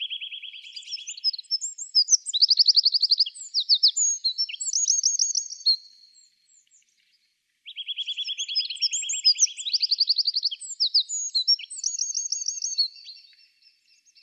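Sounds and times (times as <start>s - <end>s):
Eurasian wren Troglodytes troglodytes song: 0.0s - 14.2s.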